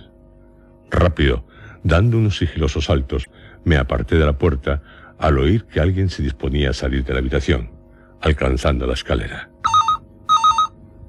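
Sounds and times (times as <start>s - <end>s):
speech: 1.0s - 9.5s
telephone ringing with electronic trills: 9.6s - 10.8s.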